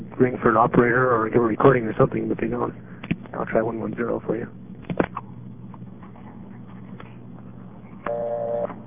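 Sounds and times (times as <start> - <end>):
speech: 0.2 - 5.1
dial tone beep: 8.1 - 8.7.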